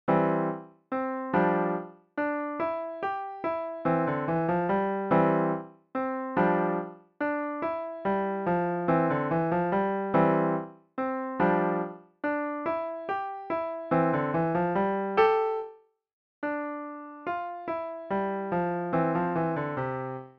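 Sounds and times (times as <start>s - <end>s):
piano solo: 0.1s - 15.8s, 16.4s - 20.3s.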